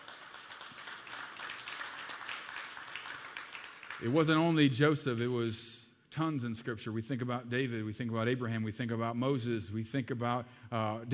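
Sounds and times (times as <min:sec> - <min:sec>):
audience clapping hands in praise: 0:00.0 - 0:04.3
speech: 0:04.0 - 0:11.1.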